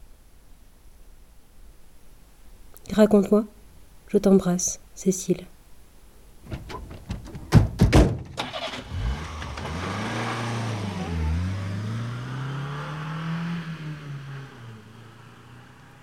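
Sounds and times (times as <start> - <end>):
speech: 2.9 - 5.5
car engine cranking, starting and idling: 8.1 - 16.0.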